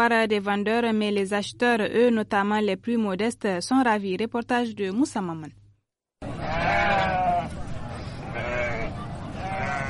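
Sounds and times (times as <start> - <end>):
speech: 0.0 - 5.6
din of voices at a market: 6.2 - 9.8
livestock market bustle: 6.2 - 9.8
sheep bleating at a livestock market: 6.4 - 7.5, 8.3 - 9.8.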